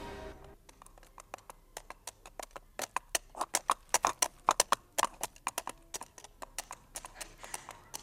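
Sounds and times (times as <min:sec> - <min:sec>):
horses' hooves clip-clopping as riders ride out through a large gate: 0:00.6 - 0:08.0.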